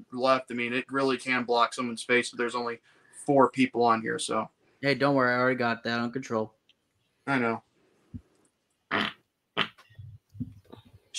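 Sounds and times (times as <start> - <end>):
speech: 0.1 - 6.6, 7.2 - 8.2, 8.9 - 9.2
fart: 8.9 - 10.1.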